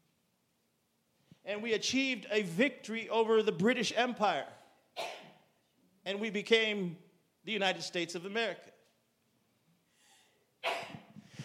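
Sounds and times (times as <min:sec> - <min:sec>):
speech: 0:01.4 - 0:05.1, 0:06.1 - 0:08.7
person sneezing in a crowd: 0:10.6 - 0:11.4.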